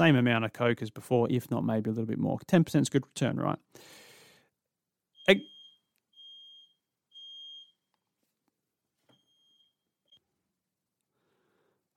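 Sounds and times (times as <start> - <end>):
brief burst of speech: 0.0 - 3.7, 5.3 - 5.5
home fire alarm beeping: 5.2 - 7.9, 9.1 - 10.2.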